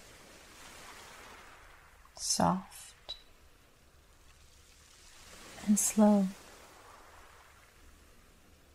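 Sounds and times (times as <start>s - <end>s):
gentle ocean waves splashing onto a beach: 0.0s - 8.7s
speech: 2.3s - 2.7s, 5.7s - 6.4s.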